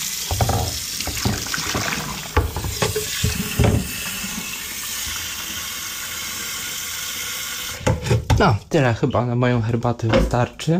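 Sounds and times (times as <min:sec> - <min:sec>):
running tap water pouring into a kettle to make tea: 0:00.0 - 0:08.4
clinks and knocks of a kettle being handled: 0:00.3 - 0:04.1
speech: 0:08.4 - 0:10.7.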